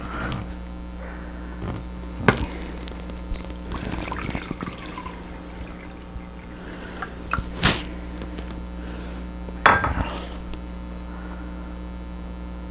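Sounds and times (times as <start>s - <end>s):
steady low hum: 0.0s - 12.6s
filtered water poured into a rice cooker bowl: 2.2s - 8.5s
water container clinking: 2.2s - 8.5s.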